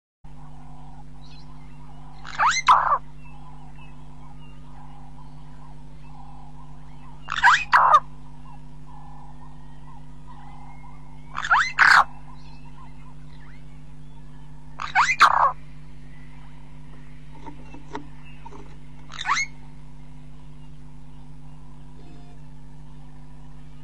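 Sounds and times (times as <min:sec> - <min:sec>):
Burchell's starling singing: 0:01.3 - 0:08.6, 0:09.6 - 0:15.6, 0:16.3 - 0:19.8.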